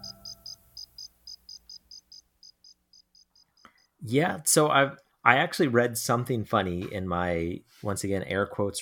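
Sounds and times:
fast-food kids' meal toy cricket chirping: 0.0s - 4.0s
speech: 4.0s - 8.7s.

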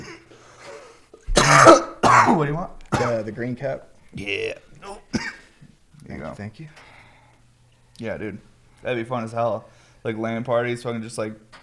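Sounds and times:
quiet room noise: 0.0s - 11.6s
loud harsh cough: 1.3s - 3.3s, 4.8s - 5.5s
speech: 2.4s - 5.0s, 6.1s - 6.9s, 8.0s - 11.6s.

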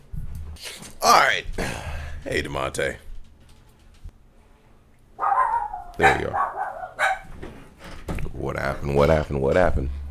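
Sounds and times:
speech: 1.0s - 3.0s, 6.0s - 6.5s, 8.4s - 10.0s
dogs barking in short sharp bursts: 5.2s - 7.4s.

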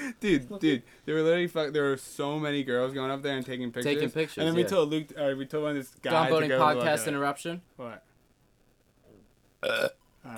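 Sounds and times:
speech: 0.1s - 8.1s, 9.6s - 10.3s
loud burp: 9.6s - 10.3s.

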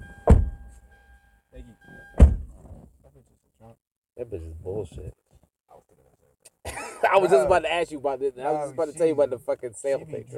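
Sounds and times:
door slamming shut: 0.0s - 0.6s, 2.2s - 2.8s
speech: 4.2s - 5.2s, 7.1s - 10.3s
laughter: 6.6s - 7.5s.

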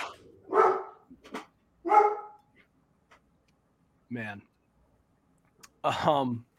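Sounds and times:
dog barking: 0.5s - 1.0s, 1.8s - 2.4s
speech: 4.1s - 4.5s, 5.8s - 6.5s.

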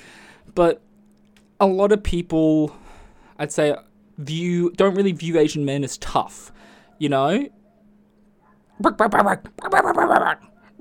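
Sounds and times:
speech: 0.5s - 0.9s, 1.6s - 2.8s, 3.4s - 7.6s, 8.8s - 10.7s
dog barking: 6.8s - 8.9s.

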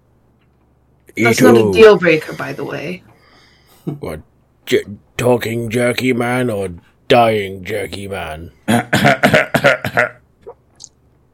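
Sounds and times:
speech: 1.1s - 3.1s, 3.9s - 10.2s
harsh raspy coughs while coughing up blood: 8.7s - 10.2s.

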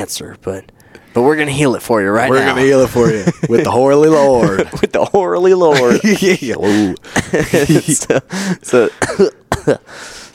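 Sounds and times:
speech: 0.0s - 10.2s
laughter: 2.3s - 9.8s
man giving harsh coughs: 5.8s - 9.9s.

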